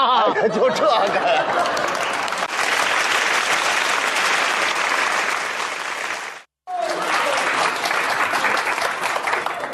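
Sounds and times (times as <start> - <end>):
speech: 0.0 - 1.9
laughter: 0.0 - 2.3
large audience applauding: 1.4 - 9.7.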